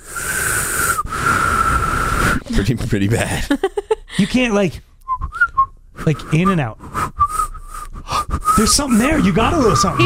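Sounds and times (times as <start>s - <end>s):
person attempting to whistle with breathy airy hiss: 0.0s - 2.5s, 5.0s - 10.0s
speech: 2.5s - 4.9s, 6.1s - 6.8s, 8.6s - 10.0s.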